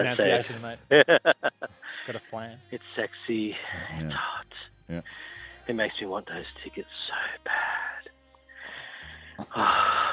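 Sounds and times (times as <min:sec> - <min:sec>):
laughter: 0:00.0 - 0:02.2
speech: 0:00.0 - 0:08.0, 0:09.4 - 0:10.1
heavy breathy exhaling against the microphone: 0:01.8 - 0:02.2, 0:05.0 - 0:05.7, 0:07.4 - 0:10.1.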